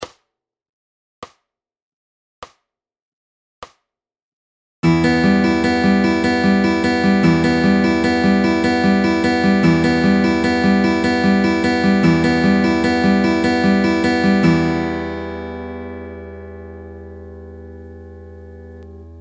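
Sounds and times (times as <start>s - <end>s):
guitar fingerpicking pattern in E minor: 4.8s - 19.2s.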